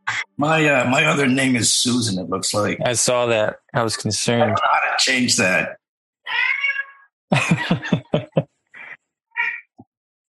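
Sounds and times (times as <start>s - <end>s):
speech: 0.4s - 6.4s
cat meowing: 6.3s - 7.0s, 9.4s - 9.7s
laughter: 7.3s - 8.9s.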